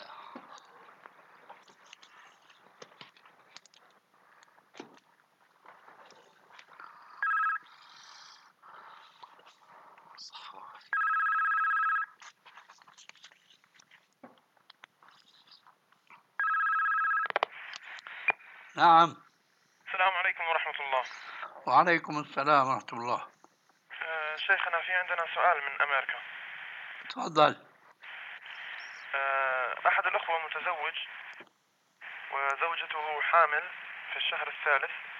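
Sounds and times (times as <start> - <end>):
faint noise: 0.0 - 35.1
telephone ringing in loud buzzing bursts: 7.2 - 7.8, 10.9 - 12.2, 16.4 - 17.5
speech: 18.8 - 19.2, 20.9 - 23.3, 24.5 - 26.3, 27.1 - 27.7, 33.4 - 35.0.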